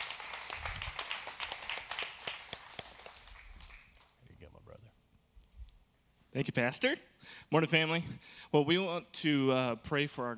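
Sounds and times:
audience applauding: 0.0 - 4.2
speech: 6.3 - 10.3.

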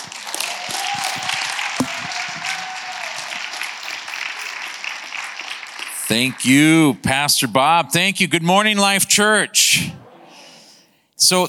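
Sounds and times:
church audience applauding: 0.0 - 7.0
speech: 6.1 - 10.0, 11.2 - 11.4.

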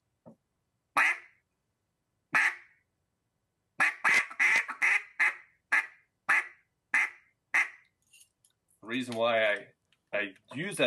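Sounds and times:
loud duck quacks from a hunter's duck call: 1.0 - 1.4, 2.3 - 2.7, 3.8 - 7.8
speech: 8.9 - 10.8.

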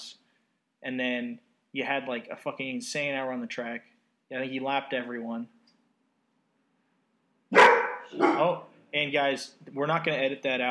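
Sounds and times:
speech: 0.8 - 5.6, 8.1 - 10.6
guard dog barking: 7.5 - 8.6.

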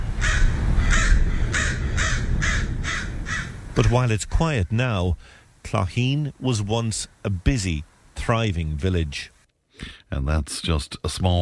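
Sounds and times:
crows cawing near derelict buildings: 0.1 - 3.8
speech: 3.8 - 11.4.

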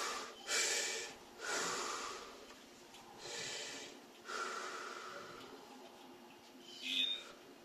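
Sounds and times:
slow deep breathing during a guided breathing exercise: 0.0 - 6.0.

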